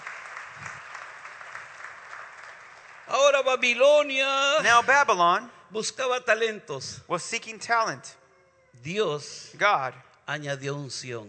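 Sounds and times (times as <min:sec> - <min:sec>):
church congregation applauding during a bilingual sermon: 0:00.0 - 0:04.9
speech: 0:03.1 - 0:08.2, 0:08.8 - 0:11.2.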